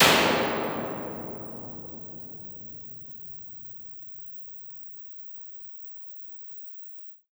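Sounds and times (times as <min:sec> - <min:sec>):
bright plate reverb impulse response: 0:00.0 - 0:03.1.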